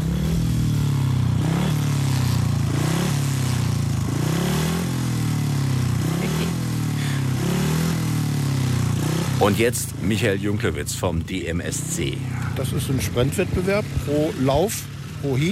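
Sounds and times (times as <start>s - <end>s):
grass track racing motorcycle engine revving: 0.0s - 15.5s
speech: 9.4s - 15.5s.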